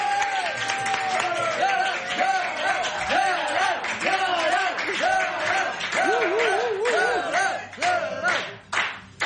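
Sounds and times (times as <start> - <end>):
whoops and cheering voices: 0.0 - 2.0, 5.9 - 7.6
studio audience applause: 0.0 - 9.2.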